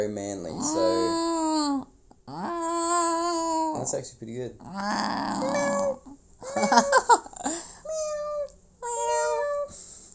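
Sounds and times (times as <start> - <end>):
speech: 0.0 - 1.3, 3.8 - 6.0
people imitating cat meows: 0.5 - 3.9, 4.7 - 7.1, 7.9 - 10.1
people laughing: 6.5 - 7.6.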